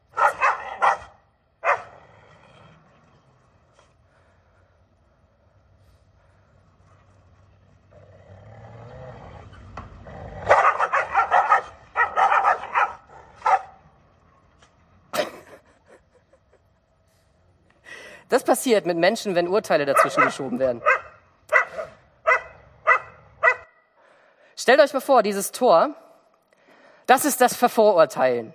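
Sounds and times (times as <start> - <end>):
two dogs barking at each other: 0.0 - 2.0, 10.4 - 13.8, 19.9 - 23.8
speech: 18.3 - 21.0, 24.7 - 26.0, 27.1 - 28.5.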